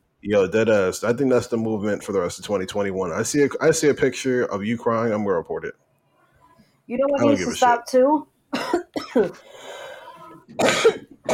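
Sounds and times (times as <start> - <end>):
speech: 0.2 - 5.9, 6.9 - 9.7
sharp coughing: 8.6 - 9.5, 10.2 - 11.3
raspy throat clearing: 10.5 - 11.3.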